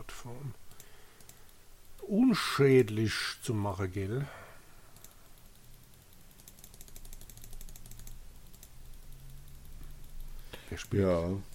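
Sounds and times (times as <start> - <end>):
low hum: 0.0 - 11.5
speech: 0.2 - 0.6, 2.1 - 4.4, 10.8 - 11.5
mouse or keyboard clicking while playing a computer game: 5.0 - 11.5.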